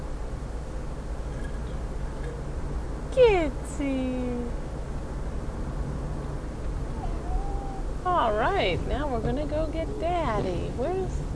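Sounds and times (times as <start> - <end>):
steady low engine-like rumble: 0.0 - 11.3
speech: 3.2 - 4.3, 8.2 - 11.3
cat meowing: 6.9 - 8.0.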